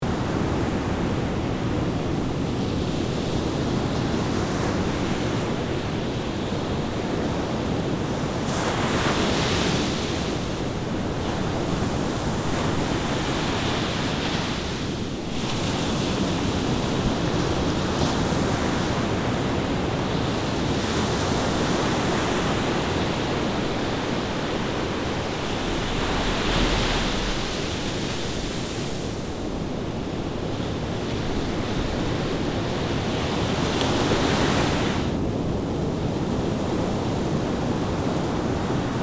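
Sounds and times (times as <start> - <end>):
strong sea wind: 0.0 - 39.0
sea waves: 19.0 - 35.1.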